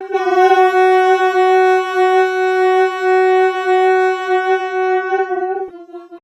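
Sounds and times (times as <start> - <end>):
saxophone: 0.0 - 6.2.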